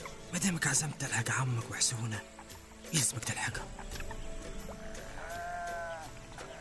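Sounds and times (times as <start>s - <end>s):
speech: 0.3s - 4.0s
sheep bleating: 4.7s - 6.6s.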